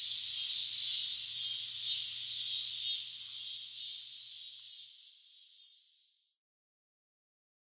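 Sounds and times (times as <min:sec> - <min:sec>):
Robinson's cicada buzzing in North America: 0:00.0 - 0:06.1.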